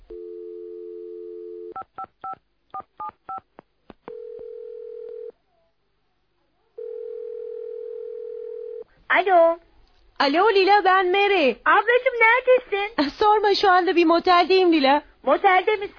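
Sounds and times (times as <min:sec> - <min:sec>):
telephone dial tone on a motel line: 0:00.1 - 0:02.4, 0:04.1 - 0:05.3, 0:06.8 - 0:08.8
speech: 0:01.8 - 0:03.7, 0:09.1 - 0:15.9.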